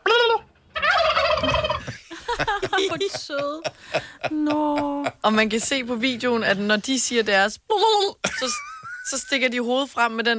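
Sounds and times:
turkeys gobbling: 0.1 - 1.9
laughter: 1.8 - 5.3
speech: 2.8 - 10.3.

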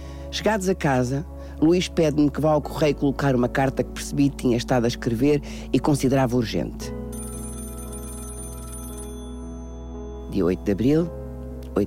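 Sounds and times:
speech: 0.3 - 7.0, 10.3 - 11.2
mobile phone ringtone: 7.1 - 10.7.

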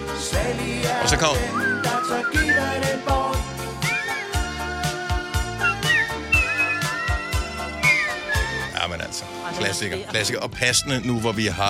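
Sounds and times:
steady punchy drum beat and deep bass line: 0.1 - 8.8
speech: 0.4 - 3.2, 9.5 - 11.6
bright whistled melody: 1.2 - 8.9.

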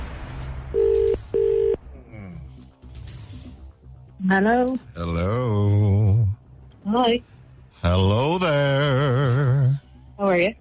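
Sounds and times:
telephone ringback tone on an outgoing call: 0.8 - 1.8
speech: 4.3 - 5.8, 6.9 - 10.5.

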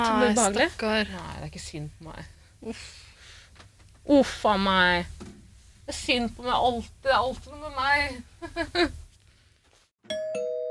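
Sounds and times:
speech: 0.2 - 3.1, 4.0 - 9.0
doorbell ringing with a two-note ding-dong chime: 10.1 - 10.6.

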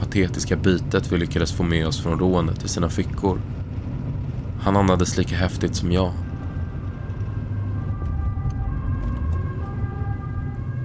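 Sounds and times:
heavy low rumble of traffic and engine noise: 0.0 - 10.8
speech: 0.2 - 3.6, 4.6 - 6.2
police car siren wailing as the car approaches: 6.2 - 10.8.

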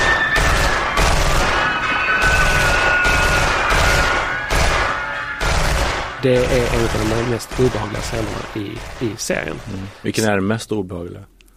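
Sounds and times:
automatic gunfire: 0.0 - 10.0
steady high whine: 0.0 - 10.4
speech: 6.2 - 11.3.

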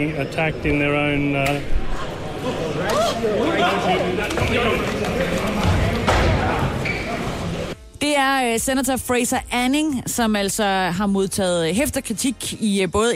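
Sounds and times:
speech: 0.0 - 5.8, 8.0 - 13.1
crowd murmur: 1.2 - 7.8.

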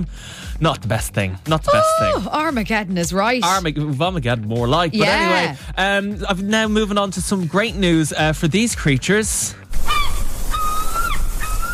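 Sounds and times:
speech: 0.0 - 9.9
seagulls calling: 9.7 - 11.7.

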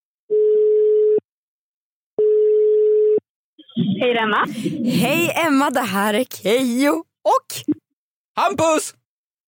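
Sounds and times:
phone ringback tone while a call connects: 0.3 - 1.2, 2.2 - 3.2
speech: 3.8 - 7.8, 8.4 - 9.0.

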